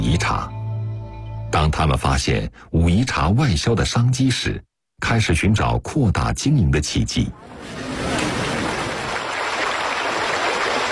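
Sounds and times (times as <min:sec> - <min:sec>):
speech: 0:00.2 - 0:00.6, 0:01.5 - 0:08.2
rushing water of the Dangxi stream in Xiamei village, Wuyishan: 0:07.4 - 0:10.9.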